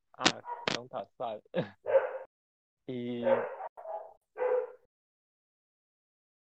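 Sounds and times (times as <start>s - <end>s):
speech: 0.2s - 1.9s, 2.9s - 3.6s
dog barking in short yappy bursts: 0.4s - 0.9s, 1.8s - 2.3s, 3.2s - 4.9s
laughter: 0.9s - 1.8s.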